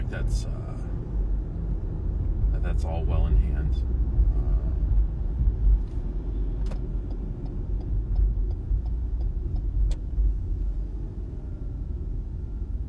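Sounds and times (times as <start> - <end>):
car engine and road rumble heard from inside a car: 0.0 - 12.8
speech: 0.1 - 0.7, 2.6 - 4.2
faint regular ticking: 6.7 - 10.1.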